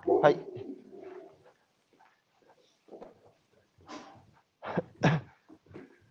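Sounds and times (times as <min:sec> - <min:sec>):
dog snorting: 0:00.0 - 0:01.4
speech: 0:00.2 - 0:00.6.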